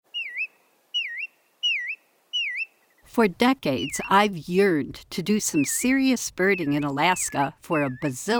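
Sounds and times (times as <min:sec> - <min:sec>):
Bristle-thighed Curlew giving clear whistled calls: 0:00.1 - 0:02.7, 0:03.7 - 0:04.3, 0:05.2 - 0:08.3
speech: 0:03.2 - 0:08.3.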